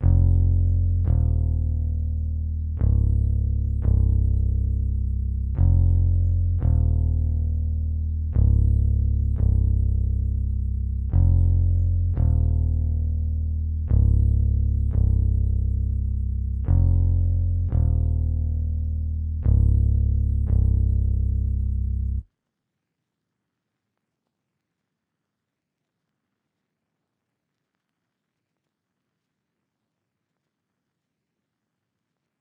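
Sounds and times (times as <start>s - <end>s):
trap bass melody loop in F minor: 0.0s - 22.3s.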